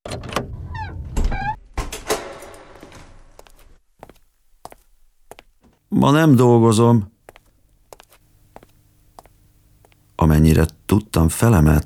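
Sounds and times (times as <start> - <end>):
door creaking open with squeaky hinge whine: 0.1 - 3.8
speech: 5.9 - 7.1, 10.4 - 11.8.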